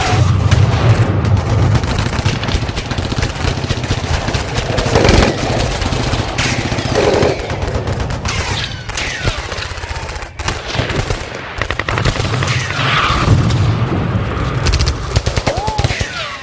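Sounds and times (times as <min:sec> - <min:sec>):
heavy gunfire from small arms and automatic weapons in a firefight at a bridge: 0:00.0 - 0:16.4.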